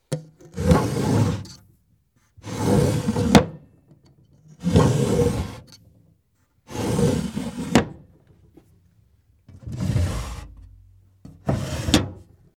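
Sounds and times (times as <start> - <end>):
drawer: 0.4 - 1.6, 2.4 - 3.6, 4.6 - 5.8, 6.7 - 8.0, 9.5 - 10.7, 11.3 - 12.3.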